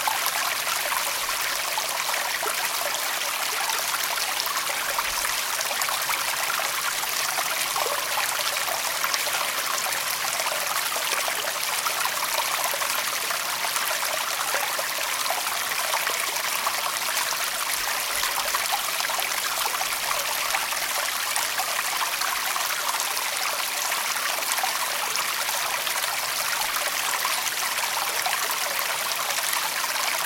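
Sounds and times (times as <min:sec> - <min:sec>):
thin stream trickling out of a pond: 0:00.0 - 0:30.2.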